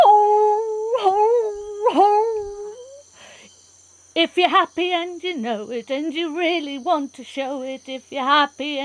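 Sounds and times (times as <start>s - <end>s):
howler monkey howling: 0.0s - 3.0s
speech: 4.2s - 8.8s.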